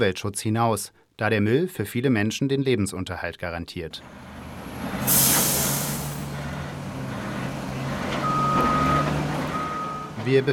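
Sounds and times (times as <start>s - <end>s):
speech: 0.0s - 4.3s, 5.0s - 5.3s, 10.3s - 10.5s
garbage truck engine drone at a waste transfer station: 4.0s - 10.5s
garbage truck air-brake hiss: 5.0s - 6.3s
steady high truck reversing beep: 8.2s - 10.2s.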